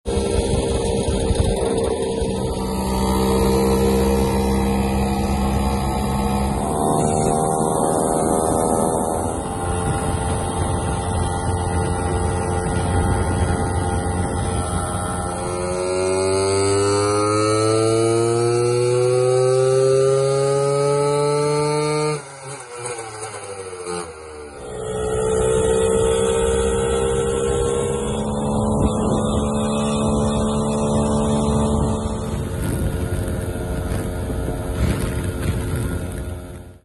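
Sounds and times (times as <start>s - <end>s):
Lambretta RB256 Special scooter engine: 0.0s - 36.8s.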